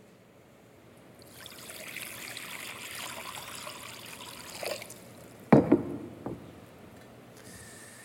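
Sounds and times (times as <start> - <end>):
water pouring into a basin: 1.2 - 5.4.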